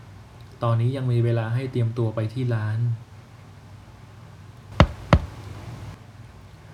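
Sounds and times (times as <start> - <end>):
speech: 0.6 - 3.1
soft knocks on a wooden bedroom door: 4.8 - 5.4
quiet hum: 4.8 - 6.0.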